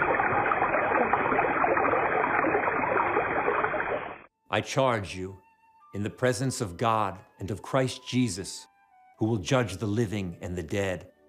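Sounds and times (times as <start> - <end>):
spring water running steadily from fountain niches: 0.0 - 4.3
speech: 4.5 - 5.4, 6.0 - 11.1.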